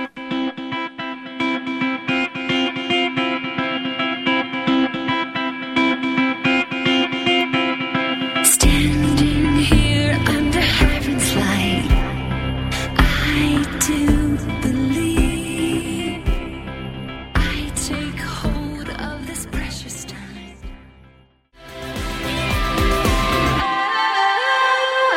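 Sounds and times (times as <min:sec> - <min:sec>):
distorted guitars: 0:00.0 - 0:21.0, 0:21.6 - 0:23.6
pop rock song with female vocals: 0:08.4 - 0:16.7, 0:17.4 - 0:20.4, 0:22.0 - 0:25.1
drums: 0:08.6 - 0:15.6, 0:16.3 - 0:16.6, 0:21.6 - 0:23.7.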